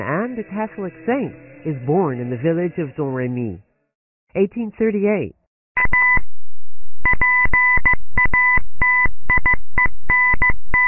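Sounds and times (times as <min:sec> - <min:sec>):
speech: 0:00.0 - 0:03.6, 0:04.3 - 0:05.9
electronic telegraph beeps tapped out in Morse code: 0:05.8 - 0:06.3, 0:07.0 - 0:10.8.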